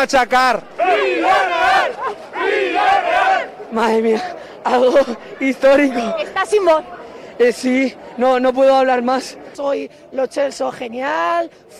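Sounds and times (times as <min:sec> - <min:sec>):
speech: 0:00.0 - 0:02.2, 0:03.7 - 0:11.7
large crowd of euphoric football fans chanting and cheering: 0:00.5 - 0:10.6.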